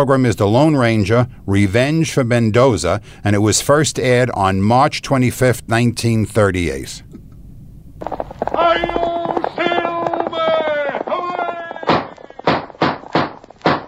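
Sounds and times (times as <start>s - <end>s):
speech: 0.0s - 7.1s
loud drawn-out call in an old-time radio drama: 8.0s - 13.1s
horse hooves galloping in a 1938 old-time radio drama: 8.0s - 13.8s.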